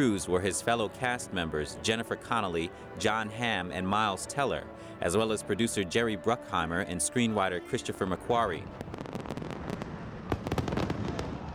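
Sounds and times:
speech: 0.0 - 9.0
fireworks exploding at a festival: 8.6 - 11.5.

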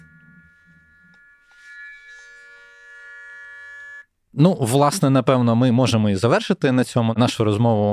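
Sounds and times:
air raid siren wailing: 0.0 - 2.3
speech: 4.4 - 7.9.

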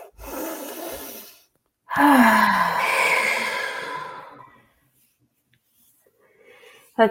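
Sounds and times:
long voiced exhale through the mouth like a sigh: 0.0 - 4.6
deep breath in: 1.9 - 4.6.

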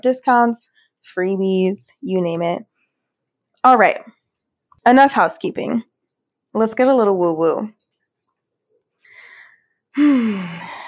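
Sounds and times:
speech: 0.0 - 2.7, 3.6 - 4.2, 4.8 - 5.9, 6.5 - 7.8, 10.0 - 10.8
deep grounding breath taken as a calming exercise: 9.0 - 10.8.

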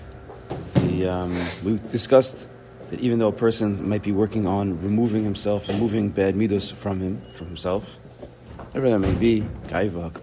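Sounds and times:
speech: 1.0 - 8.1, 8.7 - 10.2
door thudding shut: 8.9 - 9.6.

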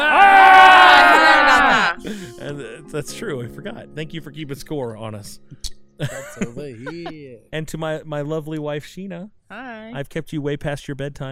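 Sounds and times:
person screaming on cue: 0.0 - 2.3
laughter: 0.8 - 2.8, 6.0 - 7.4
speech: 2.9 - 11.3.

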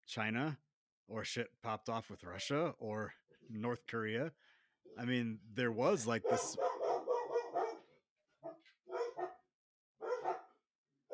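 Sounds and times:
speech: 0.1 - 6.7
dog barking: 6.2 - 11.1.

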